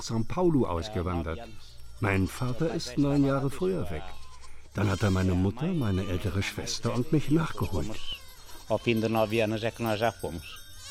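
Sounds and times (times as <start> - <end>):
speech: 0.0 - 4.2, 4.8 - 10.6
faint jingling: 0.0 - 10.8
goats bleating in a village: 2.3 - 10.8.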